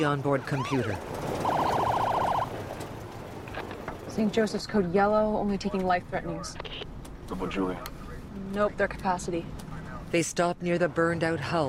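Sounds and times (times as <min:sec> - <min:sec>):
speech: 0:00.0 - 0:01.3, 0:04.2 - 0:11.6
ambulance siren wailing near an apartment building: 0:00.6 - 0:02.7.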